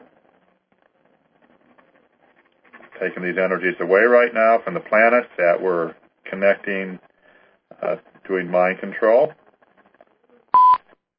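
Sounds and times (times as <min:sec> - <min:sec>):
speech: 0:03.0 - 0:07.1, 0:07.8 - 0:09.4
short electronic beep on a call-in phone line: 0:10.5 - 0:10.8.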